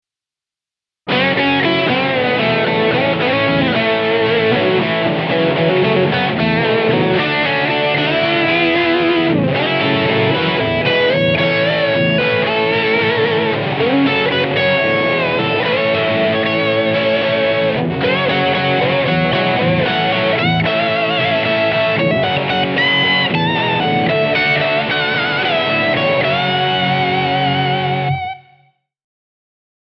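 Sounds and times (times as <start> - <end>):
guitar through MAXON OD9PRO+ Classic Drive overdrive pedal: 1.1 - 28.8.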